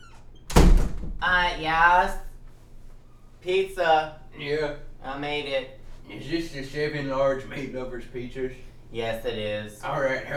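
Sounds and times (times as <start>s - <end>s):
door swinging open with a soft squeak: 0.0s - 1.6s
speech: 1.2s - 2.3s, 3.4s - 10.3s.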